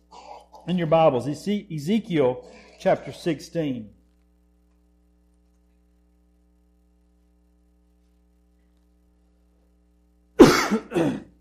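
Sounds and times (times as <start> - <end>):
person coughing: 0.1 - 0.7, 10.4 - 11.4
throat clearing: 0.1 - 0.7, 10.4 - 11.4
speech: 0.7 - 4.0.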